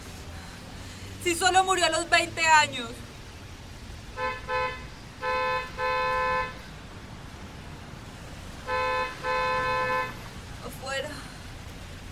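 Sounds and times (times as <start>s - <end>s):
speech: 1.2s - 3.1s
car horn honking persistently: 4.2s - 6.7s, 8.6s - 10.3s.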